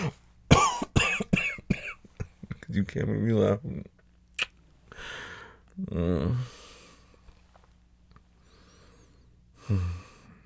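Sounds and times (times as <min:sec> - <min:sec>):
person coughing harshly: 0:00.0 - 0:02.6
speech: 0:02.8 - 0:03.9, 0:05.8 - 0:06.6, 0:09.7 - 0:10.0.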